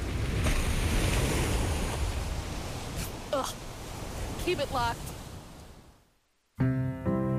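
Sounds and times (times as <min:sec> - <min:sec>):
whale flipper splashing water near boat: 0:00.0 - 0:04.4
wind around a boat on open ocean: 0:00.0 - 0:07.2
speech: 0:03.4 - 0:03.6, 0:04.4 - 0:05.1.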